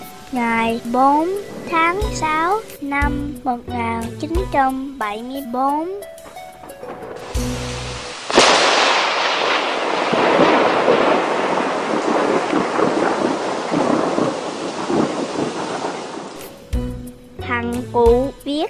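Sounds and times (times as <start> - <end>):
heavy downpour of rain over a tent campsite in Oregon: 0.0 - 5.1, 6.1 - 17.4
speech: 0.3 - 6.1
loud crack of thunder rumbling: 6.2 - 16.9.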